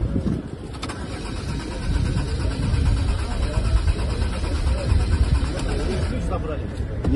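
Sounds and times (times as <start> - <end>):
indistinct voices murmuring: 0.0 - 7.1
car engine cranked by its starter failing to start: 0.6 - 6.3.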